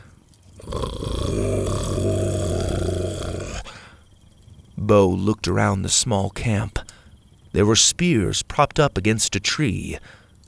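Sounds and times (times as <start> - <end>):
low menacing throaty creature growl: 0.6 - 3.8
speech: 4.9 - 6.8, 7.6 - 10.2.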